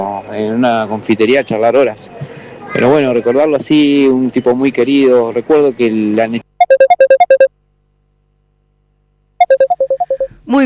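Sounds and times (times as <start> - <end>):
speech: 0.2 - 6.9
incoming app call ringtone: 6.6 - 7.5, 9.4 - 10.4.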